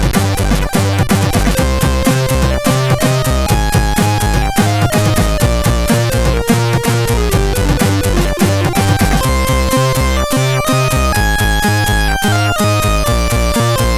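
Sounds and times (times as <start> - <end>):
intro tune on a CSG8580R5 sound chip: 0.1 - 13.9.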